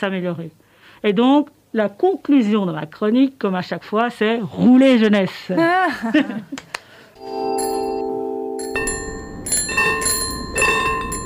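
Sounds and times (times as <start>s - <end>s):
speech: 0.0s - 7.6s
laughter: 5.6s - 6.8s
old-school bell ringing like a tram bell: 7.2s - 11.2s.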